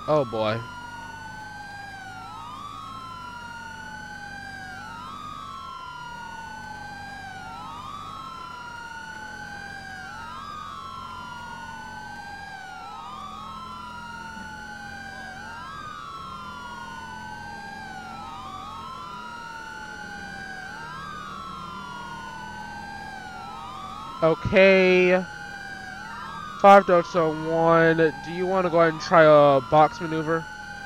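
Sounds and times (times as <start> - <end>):
video game police car siren wailing: 0.0 - 30.8
speech: 0.1 - 0.8, 24.2 - 25.4, 26.6 - 30.5.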